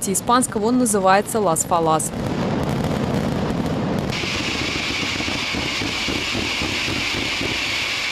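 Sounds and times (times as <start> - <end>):
speech: 0.0 - 2.4
festival fireworks exploding: 0.0 - 8.1
sharp hiss: 4.1 - 8.1.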